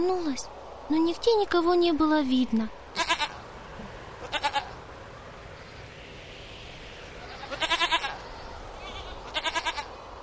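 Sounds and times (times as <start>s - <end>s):
speech: 0.0s - 2.8s
breezy outdoor hiss: 0.0s - 10.2s
goat bleating loudly: 3.0s - 3.4s, 4.2s - 4.8s, 7.2s - 9.9s.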